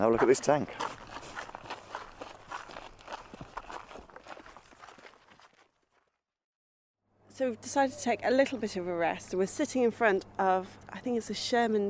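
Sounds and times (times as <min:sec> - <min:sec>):
speech: 0:00.0 - 0:01.1, 0:07.4 - 0:11.8
footsteps of people walking outdoors on a woodland route: 0:00.0 - 0:06.2.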